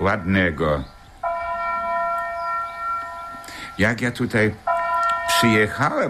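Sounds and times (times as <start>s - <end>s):
speech: 0.0s - 1.0s, 3.8s - 4.7s, 5.4s - 6.0s
faint outdoor background: 0.0s - 6.0s
town hall bell ringing: 1.2s - 4.0s, 4.7s - 6.0s.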